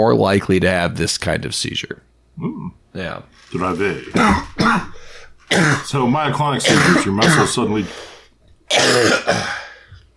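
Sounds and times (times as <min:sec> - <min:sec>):
speech: 0:00.0 - 0:08.1, 0:08.7 - 0:09.6
person clearing throat: 0:04.1 - 0:07.9, 0:08.7 - 0:09.8
person coughing: 0:04.1 - 0:08.0, 0:08.7 - 0:09.9.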